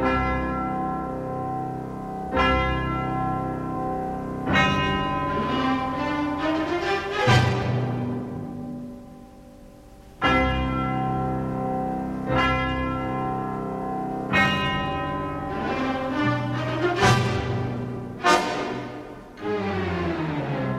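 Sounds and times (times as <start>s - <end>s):
deep orchestral bells tolling: 0.0s - 20.7s
sustained orchestral backdrop: 4.8s - 8.8s, 14.8s - 20.7s.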